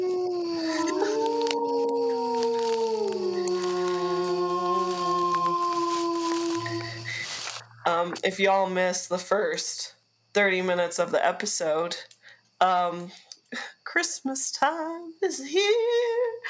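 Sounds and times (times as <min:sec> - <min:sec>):
several wolves howling together: 0:00.0 - 0:07.8
speech: 0:08.2 - 0:16.4.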